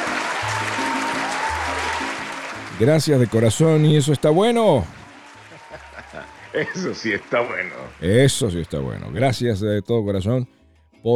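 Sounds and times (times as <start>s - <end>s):
laughter: 0.0s - 9.4s
applause from an audience: 0.0s - 9.5s
speech: 2.8s - 5.0s, 6.6s - 11.1s.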